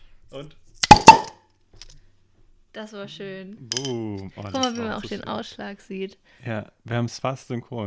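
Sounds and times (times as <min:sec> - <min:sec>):
speech: 0:00.3 - 0:00.6, 0:02.8 - 0:07.8
swing-top beer bottle popping open: 0:00.8 - 0:01.4.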